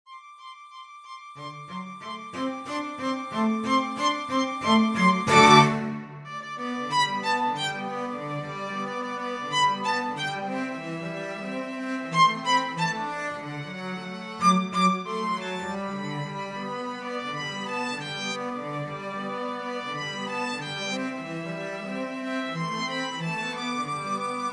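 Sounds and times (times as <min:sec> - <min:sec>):
violin and cello duet: 0:01.4 - 0:24.5.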